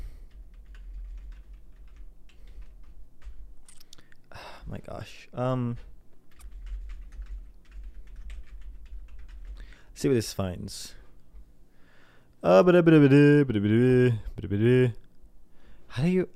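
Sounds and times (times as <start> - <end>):
typing on a computer keyboard: 0.2 - 4.0, 5.7 - 9.9
speech: 4.7 - 5.9, 10.0 - 11.0, 12.4 - 15.0, 15.9 - 16.3.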